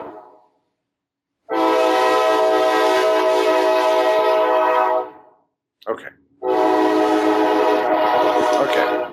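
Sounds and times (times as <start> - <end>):
passing train horn blasts: 1.5 - 5.4, 6.4 - 9.1.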